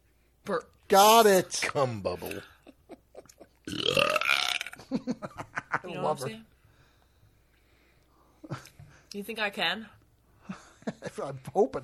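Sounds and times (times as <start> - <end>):
speech: 0.5 - 2.5, 5.1 - 6.5, 8.5 - 11.8
long loud rasping burp: 3.7 - 4.9.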